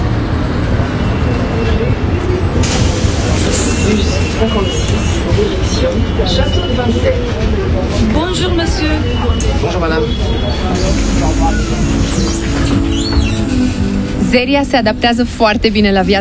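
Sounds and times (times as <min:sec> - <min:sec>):
city bus engine rumbling at a stop: 0:00.0 - 0:16.1
street noise: 0:00.0 - 0:16.1
chatter: 0:01.3 - 0:16.1
city bus brakes or doors hissing: 0:02.5 - 0:05.8, 0:10.6 - 0:14.3
speech: 0:06.2 - 0:07.7, 0:08.4 - 0:16.1.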